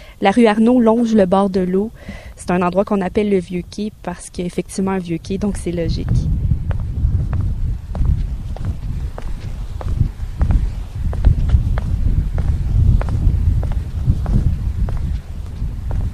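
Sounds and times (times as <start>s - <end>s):
strong wind buffeting on a bay shore: 0.0s - 16.1s
speech: 0.2s - 6.4s
crisp crunching footsteps: 5.5s - 16.1s.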